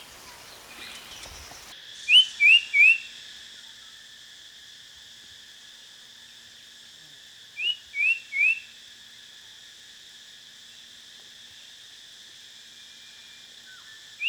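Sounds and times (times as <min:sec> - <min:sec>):
common iora rising whistles: 0:00.0 - 0:01.7
continuous high insect drone: 0:00.0 - 0:14.2.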